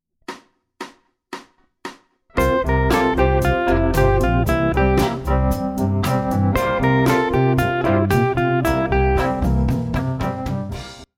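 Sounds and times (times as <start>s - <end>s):
Mixolydian lick: 2.4s - 10.8s.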